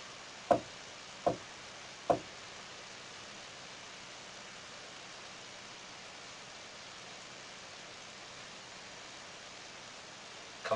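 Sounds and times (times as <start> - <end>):
knocks on a wooden table: 2.1 - 2.3.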